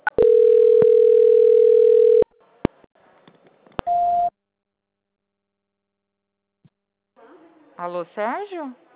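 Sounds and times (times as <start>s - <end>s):
telephone line tones during call transfer: 0.2s - 2.3s
speech: 8.1s - 8.9s.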